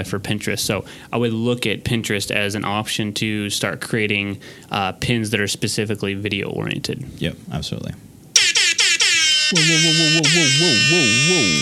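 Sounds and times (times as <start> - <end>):
speech: 0.0 - 8.1, 9.5 - 11.6
rap-style air horn sound effect blasts: 8.4 - 11.6.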